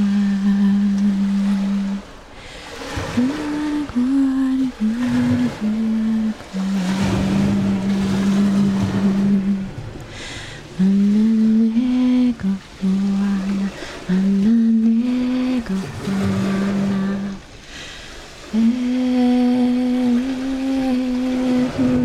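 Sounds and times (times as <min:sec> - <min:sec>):
low droning boat motor on a coastline: 0:00.0 - 0:22.0
surf washing on a southern Tasmania coastline: 0:00.0 - 0:22.0.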